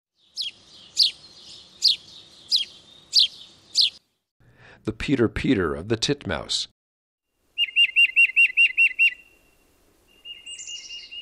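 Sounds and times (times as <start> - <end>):
house sparrow giving short bright chirps: 0.2 - 4.0, 7.6 - 9.4, 10.1 - 11.1
speech: 4.8 - 6.8.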